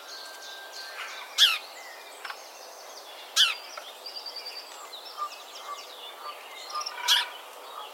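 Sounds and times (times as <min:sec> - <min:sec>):
house sparrow Passer domesticus giving loud coarse chirps: 0:00.9 - 0:02.0, 0:03.1 - 0:07.9.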